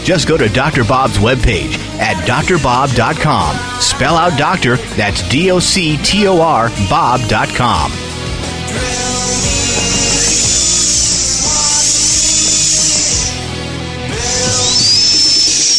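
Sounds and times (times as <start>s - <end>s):
speech: 0.0s - 8.0s, 8.7s - 9.5s
high-pitched dental drill whirring: 9.4s - 13.4s, 14.2s - 15.7s.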